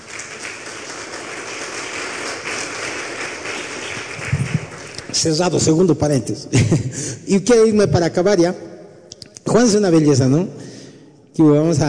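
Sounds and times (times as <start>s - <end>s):
audience applause: 0.0s - 5.4s
speech: 5.2s - 8.7s, 9.5s - 10.6s, 11.4s - 11.8s.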